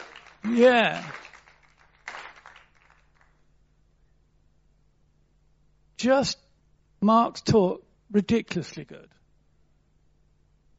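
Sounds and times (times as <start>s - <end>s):
soft scattered applause from a small crowd: 0.0s - 3.5s
speech: 0.5s - 1.2s, 6.0s - 6.4s, 7.0s - 9.2s.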